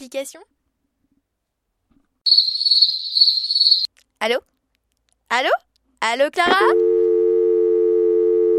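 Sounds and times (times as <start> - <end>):
speech: 0.1 - 0.6, 3.7 - 4.5, 5.3 - 6.8
telephone busy tone after dropped call: 6.6 - 8.5.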